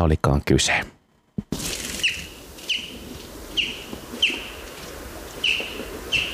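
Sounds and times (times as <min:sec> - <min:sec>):
speech: 0:00.0 - 0:00.9
soft busy outdoor noise: 0:00.0 - 0:06.3
common chaffinch giving short sharp jip flight calls: 0:02.0 - 0:04.7, 0:05.4 - 0:06.3.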